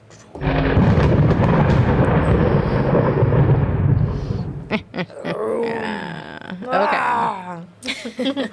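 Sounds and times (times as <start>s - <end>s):
loud deep rumble of thunder: 0.3s - 5.0s
person making drawn-out laugh-like vocal sounds: 4.7s - 8.5s.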